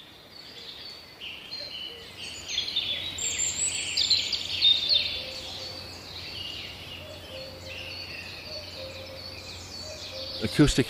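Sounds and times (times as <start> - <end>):
dawn chorus of birds singing in trees: 0.0 - 10.8
speech: 10.4 - 10.8.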